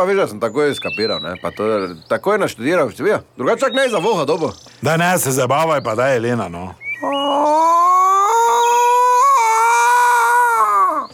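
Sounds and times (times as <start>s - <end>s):
speech: 0.0s - 7.5s
peacock call: 7.0s - 11.1s.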